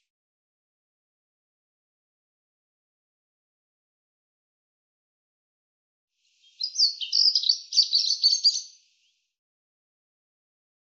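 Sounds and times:
European robin song: 6.4s - 8.8s.

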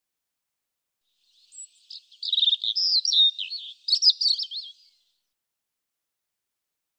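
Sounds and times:
European robin singing: 1.3s - 5.1s.

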